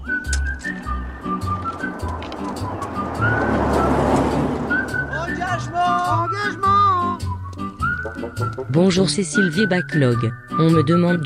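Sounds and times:
car engine rumble swelling into a rushing roar: 0:00.0 - 0:08.7
thin whistling tones: 0:00.0 - 0:11.2
speech: 0:08.6 - 0:11.2.

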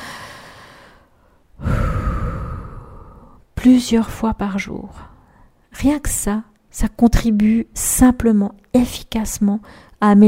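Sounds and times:
deep breath taken as a stress-relief exercise: 0:00.0 - 0:03.4
speech: 0:03.6 - 0:05.1, 0:05.8 - 0:10.2.

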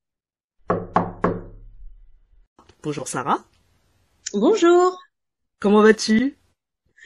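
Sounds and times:
sharp knocks on a wooden door: 0:00.6 - 0:01.6
speech: 0:02.8 - 0:03.6, 0:04.3 - 0:05.0, 0:05.6 - 0:06.4.

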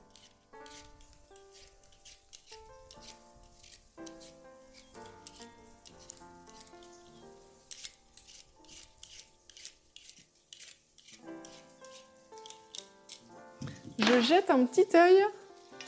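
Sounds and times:
vegetables being peeled by hand: 0:00.0 - 0:14.4, 0:15.4 - 0:15.8
speech: 0:14.1 - 0:15.4.

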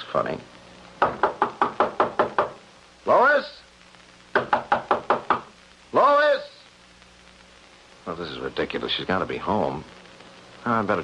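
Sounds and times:
speech: 0:00.1 - 0:00.6, 0:03.1 - 0:03.6, 0:08.1 - 0:10.0, 0:10.6 - 0:11.0
knocking on a door: 0:01.0 - 0:02.6, 0:04.3 - 0:05.5
man calling out: 0:05.9 - 0:06.6.

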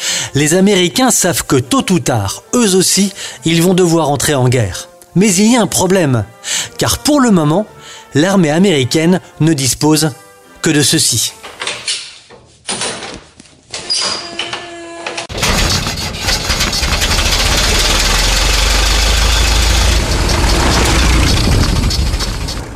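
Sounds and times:
speech: 0:00.3 - 0:12.0
old Ford Model T engine hand-cranked at the front: 0:15.4 - 0:22.7.

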